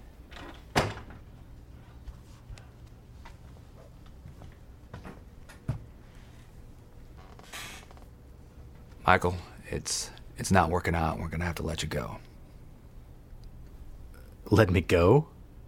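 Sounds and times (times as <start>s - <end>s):
door shutting with a thud: 0.4s - 1.3s
speech: 9.1s - 12.3s, 14.5s - 15.3s.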